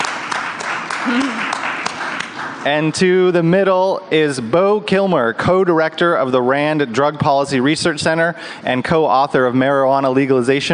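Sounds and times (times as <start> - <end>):
sharp individual claps: 0.0 - 2.6
festival audience applauding: 0.0 - 2.7
speech: 1.0 - 1.3, 2.6 - 10.7.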